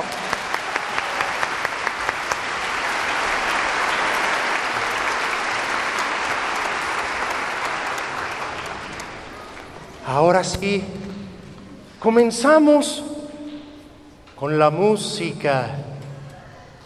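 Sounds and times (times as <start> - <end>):
large audience applause welcoming the conductor: 0.0 - 10.0
speech: 10.2 - 11.0, 12.0 - 13.1, 14.4 - 15.9.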